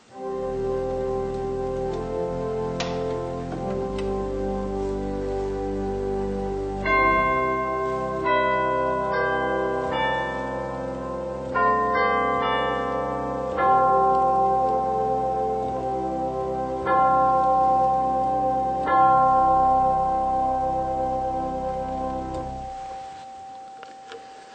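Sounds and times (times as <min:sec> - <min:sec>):
chimes percussion stop of a large pipe organ playing a slow melody: 0:00.0 - 0:24.5.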